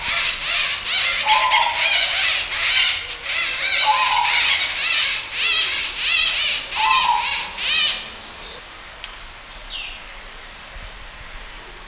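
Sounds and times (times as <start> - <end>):
flock of Merops bullockoides white-fronted bee-eaters calling while feeding: 0.0 - 8.6.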